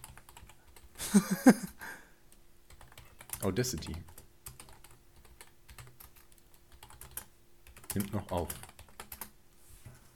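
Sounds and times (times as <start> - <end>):
typing a message on a computer keyboard during a call: 0.0 - 1.0, 2.7 - 9.4
laughter: 1.0 - 1.7
speech: 1.1 - 2.0, 3.4 - 4.1, 7.9 - 8.7.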